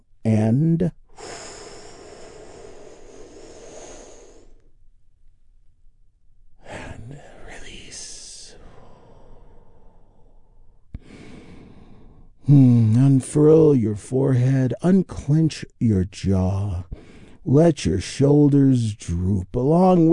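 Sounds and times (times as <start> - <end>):
speech: 0.5 - 1.4, 12.5 - 20.1
breathy whispery exhale during a relaxation exercise: 1.1 - 4.7, 8.6 - 12.9
big deep breath taken together during a relaxation exercise: 1.1 - 4.8, 8.5 - 13.0, 16.9 - 17.4.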